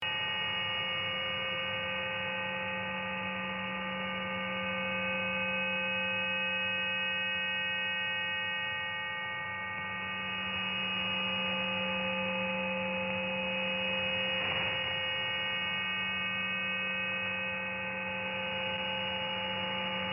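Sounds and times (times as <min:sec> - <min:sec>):
Russian coastal over-the-horizon radar signal: 0:00.0 - 0:20.1.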